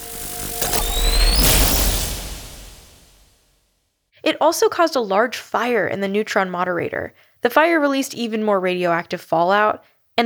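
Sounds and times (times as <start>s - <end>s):
deep explosion of a nuclear power plant reactor core: 0.0s - 3.3s
rising whine: 0.0s - 3.4s
speech: 4.3s - 10.2s.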